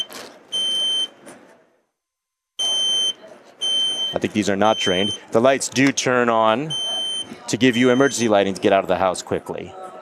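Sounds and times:
smoke detector test alarm beeping: 0.0 - 1.2, 2.6 - 5.3, 6.7 - 8.3
speech: 4.1 - 6.9, 7.5 - 9.8.

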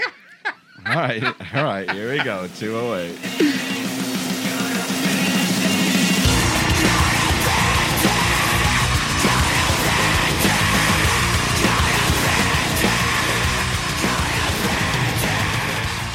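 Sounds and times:
laughter: 0.0 - 5.2
speech: 1.0 - 3.8
heavy drums in a rock song: 1.9 - 16.1
bass in a rock song: 2.0 - 16.1
harsh screamed vocals in a rock song: 6.3 - 16.1.

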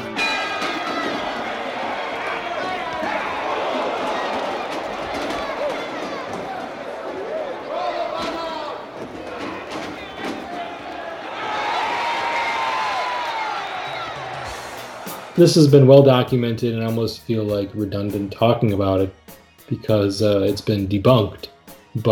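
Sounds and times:
large crowd roaring and shouting: 0.0 - 16.4
speech: 15.4 - 22.0.

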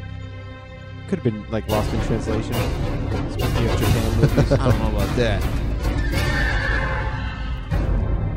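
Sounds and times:
speech: 1.1 - 5.6
laughter: 3.6 - 5.6
horse whinnying as a rider falls off: 5.8 - 7.7.

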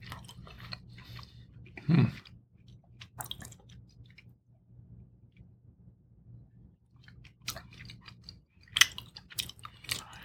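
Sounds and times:
person chewing Parmesan cheese: 0.0 - 4.4, 6.9 - 10.2
low steady hum: 0.0 - 10.2.

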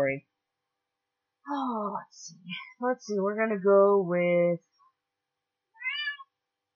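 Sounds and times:
speech: 0.0 - 0.3, 1.5 - 4.7
cat meowing: 5.7 - 6.3.

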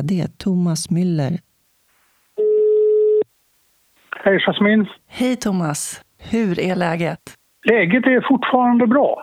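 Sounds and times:
speech: 0.0 - 1.5, 4.2 - 9.2
electronic telephone ringback tone of an outgoing call: 2.4 - 3.2.

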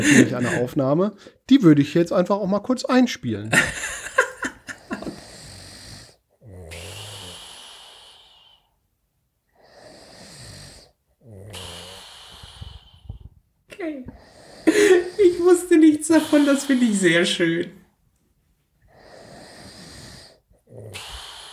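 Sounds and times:
laughter: 0.0 - 0.7, 3.5 - 5.2, 14.7 - 15.4
person snoring loudly: 0.0 - 0.7, 4.2 - 8.7, 9.6 - 13.2, 14.1 - 17.7, 18.9 - 21.5
speech: 0.0 - 4.2, 16.3 - 17.8.

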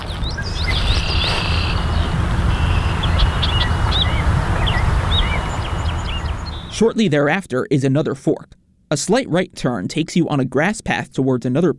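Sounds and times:
steady low outdoor rumble: 0.0 - 7.0
red-winged blackbird calling with short chirps and buzzy trill: 0.3 - 6.8
speech: 6.8 - 11.7.

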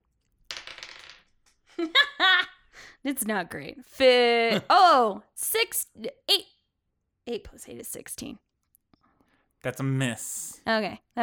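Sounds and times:
dice tumbling across a hard tabletop: 0.4 - 1.6
speech: 1.8 - 2.1, 3.0 - 6.5, 7.3 - 8.4, 9.6 - 11.2.

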